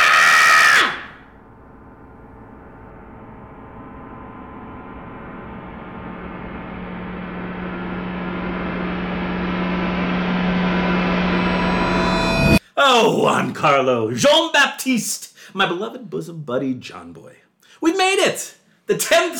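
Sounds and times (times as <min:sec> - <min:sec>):
vocal shriek imitating a heavy metal scream: 0:00.0 - 0:01.3
steady droning buzz with a low hum: 0:01.2 - 0:12.6
speech: 0:12.8 - 0:19.3.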